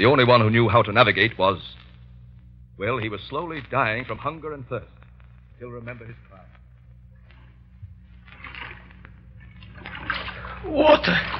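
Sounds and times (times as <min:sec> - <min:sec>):
speech: 0:00.0 - 0:01.8, 0:02.8 - 0:05.0, 0:05.6 - 0:06.6, 0:10.6 - 0:11.3
steady low rumble: 0:00.3 - 0:10.8
seawater sloshing around an open boat: 0:08.2 - 0:11.3.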